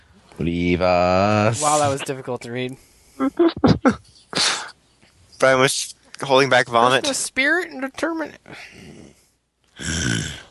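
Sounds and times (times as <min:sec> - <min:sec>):
speech: 0:00.4 - 0:04.6, 0:05.4 - 0:09.2
person growling throatily: 0:08.7 - 0:09.2, 0:09.8 - 0:10.4.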